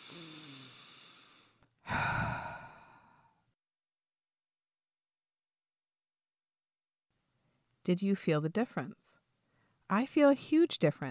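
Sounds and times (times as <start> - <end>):
slow deep breathing in and out: 0.0 - 3.4
speech: 7.9 - 9.2, 9.9 - 11.0.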